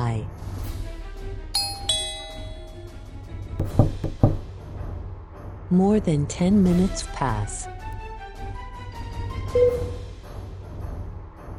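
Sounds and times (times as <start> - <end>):
doorbell two-note ding-dong chime: 1.6 - 3.0
dull knocks on a door: 3.6 - 4.5
speech: 5.7 - 7.8, 9.5 - 10.0.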